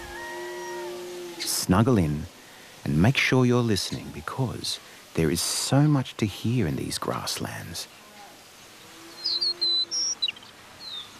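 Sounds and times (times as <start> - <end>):
speech: 1.6 - 8.0
pampas meadowlark calling in the morning over Argentine grasslands: 9.1 - 11.1.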